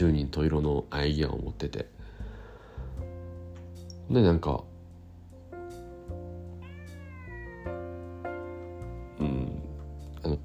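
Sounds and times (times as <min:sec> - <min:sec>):
speech: 0:00.0 - 0:02.0, 0:04.1 - 0:04.7
cat meowing to be played with: 0:06.5 - 0:09.8.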